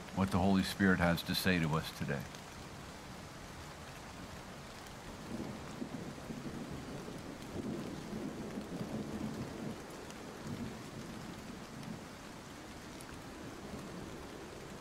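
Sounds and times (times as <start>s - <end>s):
steady rain: 0.0s - 14.7s
speech: 0.2s - 2.4s
thunder rumbling: 5.2s - 12.1s.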